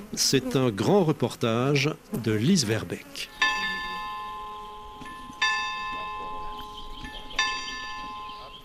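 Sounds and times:
speech: 0.2 - 3.4
church bells tolling over a garden in central Paris: 3.4 - 8.6.

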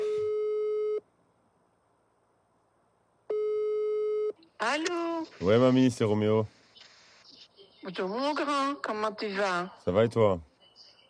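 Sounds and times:
telephone line tone beeps before a phone call: 0.0 - 1.0, 3.3 - 4.4
speech: 4.6 - 6.6, 7.8 - 10.5.

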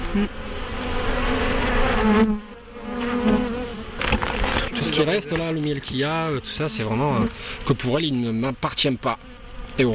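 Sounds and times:
many honeybees buzzing in an open hive: 0.0 - 9.9
speech: 0.1 - 0.6, 2.0 - 2.5, 5.0 - 9.9.

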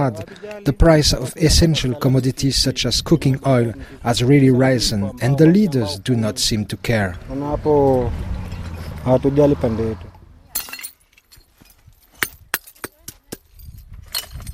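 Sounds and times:
speech: 0.0 - 8.3, 9.0 - 10.1
faint clattering of glass shards: 10.5 - 12.9, 13.6 - 14.5
glass bottles smashed by a waste picker: 10.5 - 12.9, 14.1 - 14.5.

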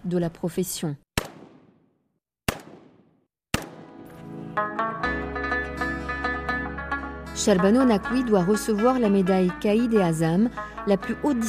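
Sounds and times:
speech: 0.1 - 1.0, 7.4 - 11.4
gunshots at a police shooting range: 1.2 - 4.1
layered musical bed: 3.7 - 10.9.

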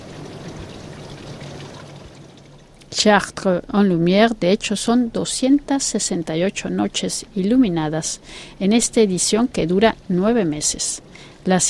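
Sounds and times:
river water flowing: 0.0 - 2.9
speech: 2.9 - 11.6.

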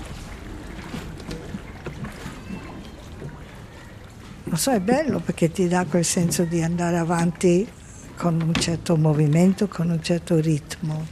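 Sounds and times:
oars dipping and pulling through water while rowing: 0.0 - 11.0
speech: 4.5 - 11.0.

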